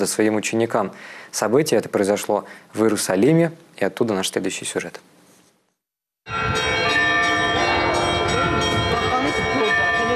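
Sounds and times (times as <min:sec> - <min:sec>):
speech: 0:00.0 - 0:05.1
festive church bells ringing at a cathedral in Jerusalem: 0:06.3 - 0:10.1.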